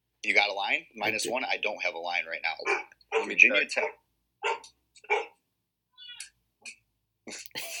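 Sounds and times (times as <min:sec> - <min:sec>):
speech: 0:00.2 - 0:05.3
dog yelping, whining and growling in a podcast booth: 0:02.7 - 0:03.4, 0:04.4 - 0:05.4.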